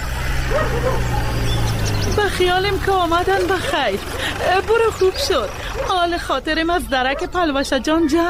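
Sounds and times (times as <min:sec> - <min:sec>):
dog barking and yipping: 0:00.1 - 0:02.0, 0:05.0 - 0:06.1, 0:06.9 - 0:07.4
speech: 0:02.4 - 0:08.2.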